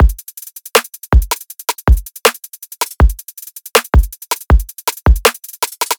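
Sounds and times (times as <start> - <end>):
trap drum loop: 0.0 - 5.9.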